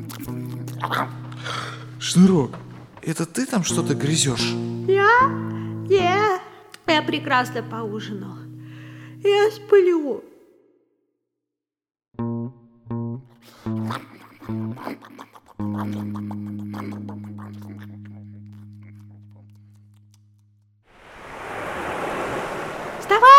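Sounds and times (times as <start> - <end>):
speech: 0.0 - 8.4, 9.2 - 10.3, 13.6 - 17.1
sea waves and surf: 20.9 - 23.3.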